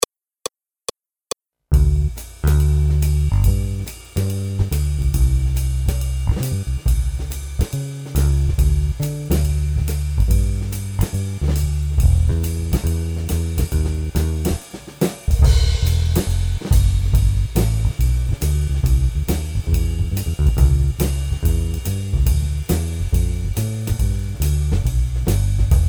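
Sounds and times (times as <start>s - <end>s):
jazz swing accompaniment only: 1.8s - 25.8s.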